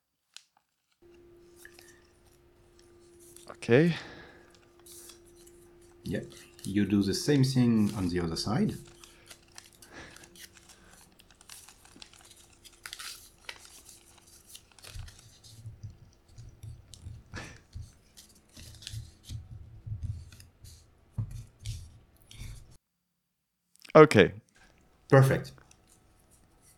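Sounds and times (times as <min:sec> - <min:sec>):
paper being folded towards the center: 0:00.3 - 0:22.8
speech: 0:03.5 - 0:04.1, 0:06.1 - 0:08.9, 0:24.0 - 0:24.4, 0:25.1 - 0:25.6.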